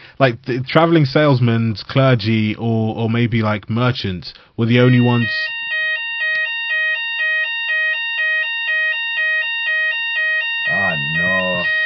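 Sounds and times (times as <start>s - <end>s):
speech: 0.2s - 5.6s
fire alarm with two-tone electronic warble: 4.8s - 11.8s.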